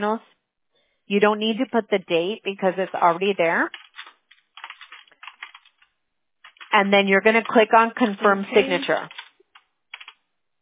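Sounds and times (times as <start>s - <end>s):
speech: 0.0s - 0.4s, 1.1s - 3.8s, 6.7s - 9.2s
typing on a computer keyboard: 3.7s - 7.6s, 9.1s - 10.2s.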